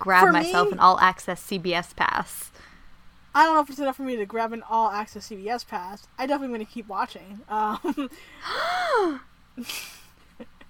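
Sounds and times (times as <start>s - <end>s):
speech: 0.0s - 2.7s, 3.4s - 10.5s
person gasping: 8.1s - 9.2s.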